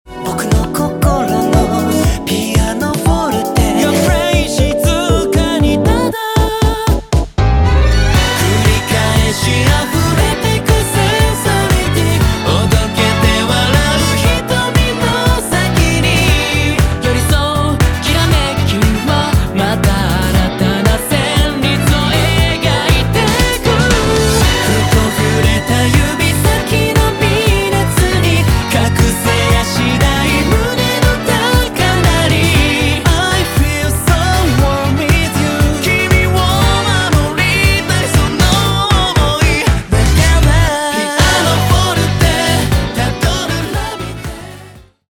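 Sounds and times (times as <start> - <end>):
piano: 0.1 - 45.0.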